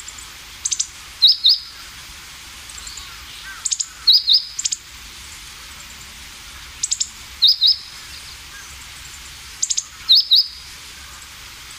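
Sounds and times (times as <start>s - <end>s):
constant hiss: 0.0s - 11.7s
meadow bunting calling with quick high ticks and upswept paired notes: 0.6s - 2.0s, 2.7s - 4.8s, 6.5s - 8.9s, 9.6s - 11.7s.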